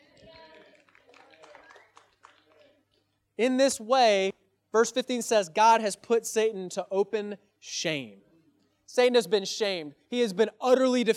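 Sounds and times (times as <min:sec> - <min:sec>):
audience clapping: 0:00.0 - 0:03.0
speech: 0:03.4 - 0:08.3, 0:08.9 - 0:11.1.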